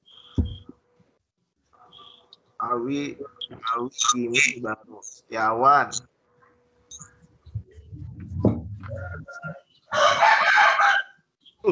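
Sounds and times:
speech: 0:02.6 - 0:06.1
rooster crowing: 0:09.9 - 0:11.2.

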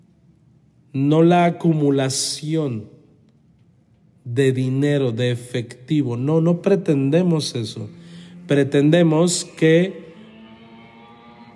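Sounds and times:
speech: 0:00.9 - 0:03.0, 0:04.3 - 0:10.1
poorly tuned motorcycle passing by: 0:07.9 - 0:11.5.

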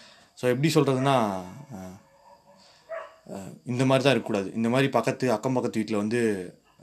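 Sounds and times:
faint high whine: 0:00.0 - 0:06.8
speech: 0:00.4 - 0:02.0, 0:03.3 - 0:06.6
neighbor's dog barking: 0:00.9 - 0:03.3.

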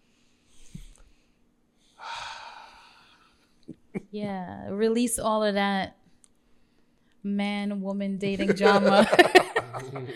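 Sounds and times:
person taking a deep breath: 0:02.0 - 0:03.4
speech: 0:03.7 - 0:06.0, 0:07.2 - 0:10.1
laughter: 0:08.3 - 0:10.1.

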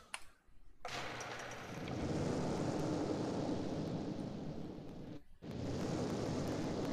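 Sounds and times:
fireball explosion with sustained roar of rushing flame: 0:01.7 - 0:06.9.

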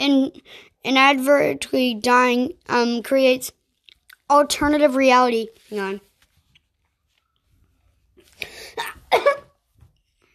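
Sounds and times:
speech: 0:00.0 - 0:03.6, 0:04.3 - 0:06.1
person making a staged theatrical fake sneeze: 0:08.5 - 0:09.6.

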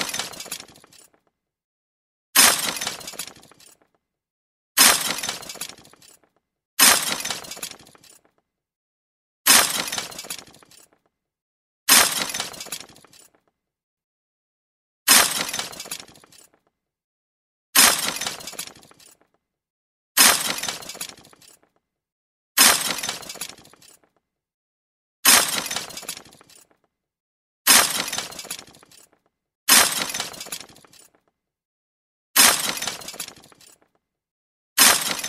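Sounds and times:
glass breaking: 0:00.0 - 0:01.2, 0:02.4 - 0:03.9, 0:04.8 - 0:08.4, 0:09.5 - 0:11.0, 0:11.9 - 0:13.4, 0:15.1 - 0:16.6, 0:17.8 - 0:19.2, 0:20.2 - 0:21.7, 0:22.6 - 0:24.1, 0:25.2 - 0:26.8, 0:27.7 - 0:31.2, 0:32.4 - 0:33.9, 0:34.8 - 0:35.2.

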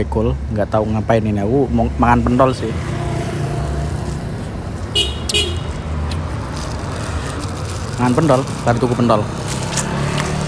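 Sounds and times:
speech: 0:00.0 - 0:02.9, 0:08.0 - 0:09.4
steady roadside traffic rumbling at Proliman Rekul: 0:00.0 - 0:10.4
passing truck horn honking: 0:04.9 - 0:05.8.

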